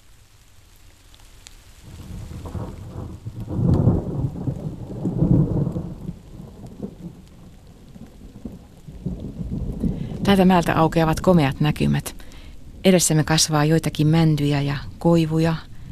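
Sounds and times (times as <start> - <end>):
steady rain: 0.0 - 15.8
low rolling thunder: 1.9 - 12.9
speech: 10.3 - 12.2, 12.8 - 15.7.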